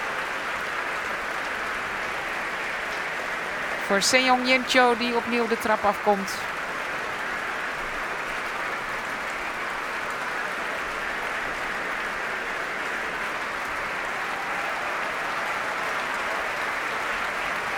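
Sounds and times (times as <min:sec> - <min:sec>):
large concert hall audience applauding: 0:00.0 - 0:17.7
speech: 0:03.9 - 0:06.6.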